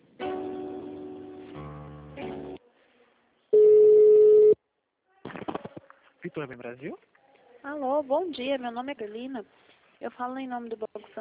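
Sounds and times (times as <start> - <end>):
telephone line tones during a call transfer: 3.6 - 4.6
speech: 6.4 - 11.1.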